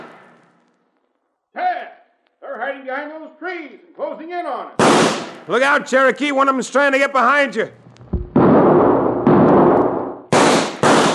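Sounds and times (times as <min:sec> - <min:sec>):
speech: 0:02.8 - 0:07.8
loud carbine rifle gunshots: 0:04.8 - 0:05.4, 0:08.2 - 0:11.1.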